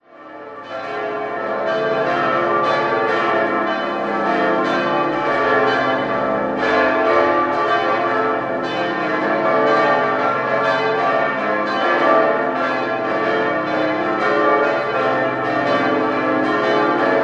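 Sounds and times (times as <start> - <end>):
bells ringing in Munich: 0.2 - 17.2.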